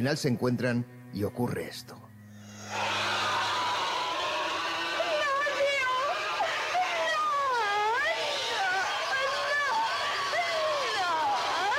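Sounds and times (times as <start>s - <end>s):
speech: 0.0s - 2.1s
piercing unearthly alien scream from a 1976 horror film: 2.4s - 11.7s.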